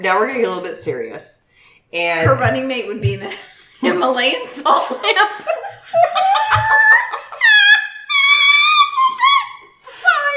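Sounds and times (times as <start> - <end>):
speech: 0.0 - 6.8
laughter: 3.2 - 10.3
dogs howling together in response to a squeal: 5.9 - 9.7.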